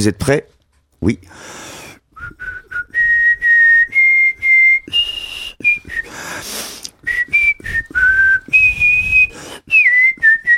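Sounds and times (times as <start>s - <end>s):
speech: 0.0s - 1.8s
person whistling a national anthem: 2.2s - 10.5s.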